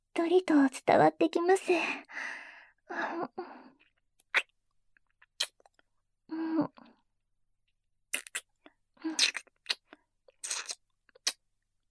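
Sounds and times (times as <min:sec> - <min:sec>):
speech: 0:00.2 - 0:03.8, 0:06.3 - 0:06.9, 0:09.0 - 0:09.5
soft kissing with wet lip smacks: 0:08.1 - 0:08.5, 0:09.1 - 0:11.4.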